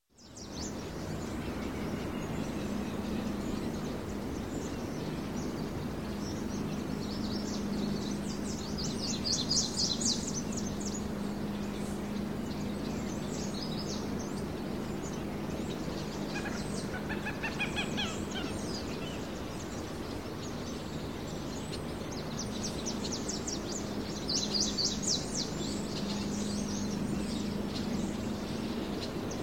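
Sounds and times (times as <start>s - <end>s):
various birds in early morning country ambience: 0.0s - 29.4s.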